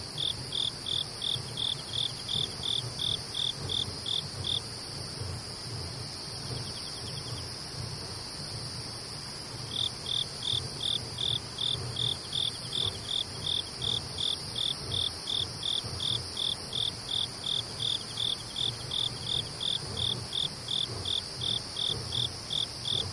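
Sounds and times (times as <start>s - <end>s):
cricket chirping at night: 0.0s - 23.1s
insects humming at night: 0.0s - 23.1s.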